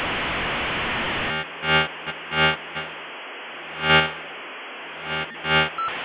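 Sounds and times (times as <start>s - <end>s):
Motorola SM56 V92 laser beam: 0.1s - 3.0s, 3.7s - 4.3s, 5.0s - 6.0s.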